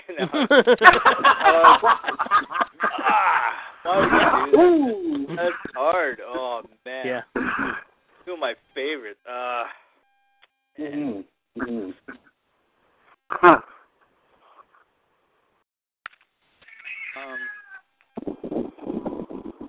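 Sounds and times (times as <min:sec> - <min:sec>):
laughter: 0:00.0 - 0:06.6
speech: 0:00.1 - 0:03.3
voices talking: 0:03.9 - 0:07.3
cat meowing: 0:16.6 - 0:17.9.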